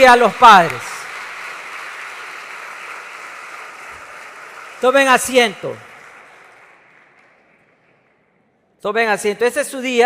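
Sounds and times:
speech: 0.0s - 0.9s, 4.8s - 5.9s, 8.8s - 10.0s
crowd applauding fathers on Father's Day: 0.0s - 8.1s.

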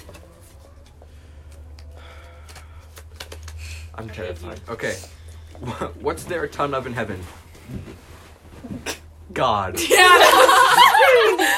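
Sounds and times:
deck of playing cards being shuffled: 0.0s - 4.7s
speech: 4.0s - 11.5s
laughter: 9.8s - 11.5s.

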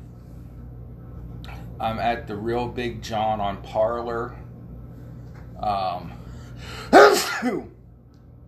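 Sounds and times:
speech: 1.8s - 4.4s, 5.6s - 7.8s
sneeze: 6.9s - 7.7s.

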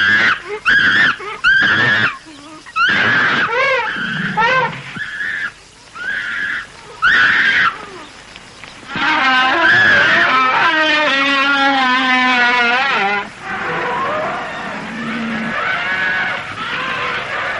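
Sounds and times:
herd of elephants trumpeting: 0.0s - 8.0s, 8.9s - 17.5s
rumbling rushing of elephant herd moving into the jungle: 2.8s - 17.5s.

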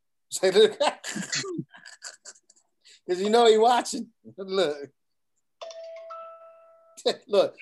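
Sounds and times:
speech: 0.3s - 1.6s, 3.1s - 5.0s, 7.0s - 7.6s
phone text message notification chime: 5.6s - 7.1s.

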